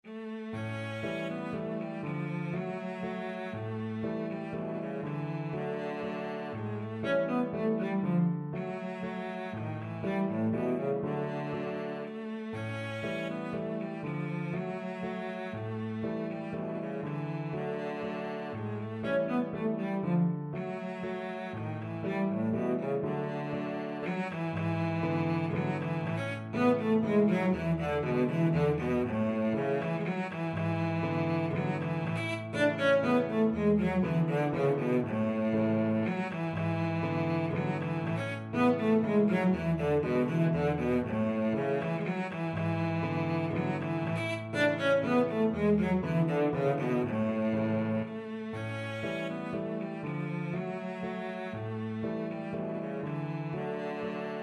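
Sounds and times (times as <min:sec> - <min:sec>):
cello playing waltzes: 0:00.0 - 0:54.4.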